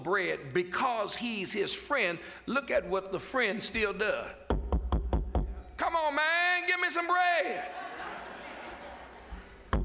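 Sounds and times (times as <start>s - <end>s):
speech: 0.0s - 4.5s, 5.9s - 7.9s
loud knocks pounding on a door: 4.5s - 5.5s
laughter: 7.5s - 9.7s.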